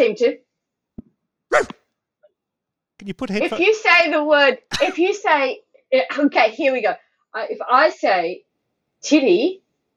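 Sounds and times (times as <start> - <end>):
speech: 0.0 - 0.5, 1.5 - 1.8, 3.0 - 8.4, 9.0 - 9.6
dog woofing and barking: 1.5 - 1.8.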